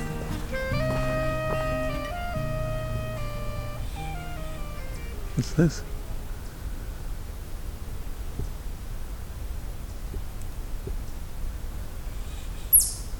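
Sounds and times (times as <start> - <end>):
young bird calling: 0.0 - 6.6
outdoor hiss: 0.0 - 13.1
speech: 5.4 - 5.9.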